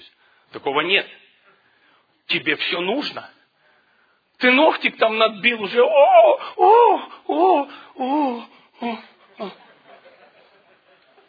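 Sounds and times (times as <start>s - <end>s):
speech: 0.5s - 1.2s, 2.3s - 3.4s, 4.4s - 9.6s
person wailing and crying over minor hurt: 5.8s - 9.7s
laughter: 9.2s - 11.2s.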